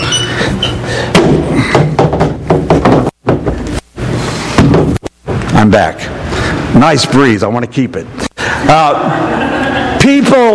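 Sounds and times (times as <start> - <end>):
door opening: 0.0 - 0.8
knocks and thumps: 1.1 - 3.8, 4.5 - 5.4
speech: 5.6 - 9.6
laughter: 8.8 - 10.2.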